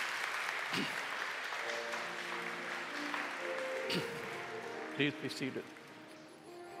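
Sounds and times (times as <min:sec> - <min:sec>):
audience at a church service applauding: 0:00.0 - 0:06.7
speech: 0:00.7 - 0:01.0, 0:03.9 - 0:04.1, 0:05.0 - 0:05.8.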